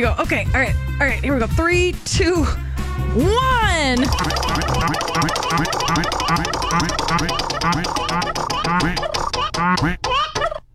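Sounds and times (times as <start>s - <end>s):
speech: 0.0s - 10.3s
prize wheel clicking as it spins: 4.0s - 9.3s
chicken clucking and squawking: 4.4s - 10.6s.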